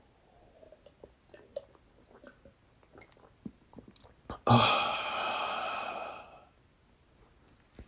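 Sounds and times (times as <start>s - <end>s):
small sips of water: 0.4s - 6.4s
speech: 4.5s - 4.8s.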